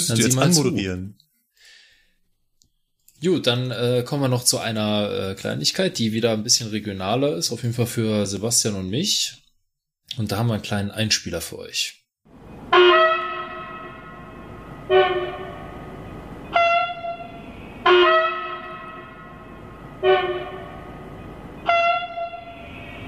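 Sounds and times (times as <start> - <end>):
speech: 0.0 - 1.2, 3.2 - 9.4, 10.1 - 12.0
ICE train horn honking at maintenance depot: 12.7 - 23.0.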